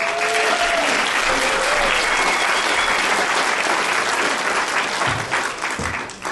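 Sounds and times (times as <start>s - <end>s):
audience applause: 0.0s - 6.3s
faint whistles: 2.2s - 3.1s.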